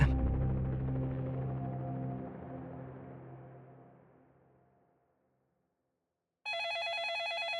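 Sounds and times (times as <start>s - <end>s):
low sustained musical tone: 0.0s - 4.7s
warbling telephone ringing: 6.5s - 7.5s.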